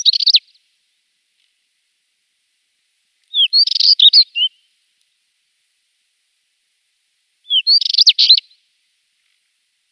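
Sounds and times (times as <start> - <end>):
spectacled warbler singing scratchy twittering phrases: 0.0 - 0.6, 3.3 - 4.7, 7.4 - 8.6.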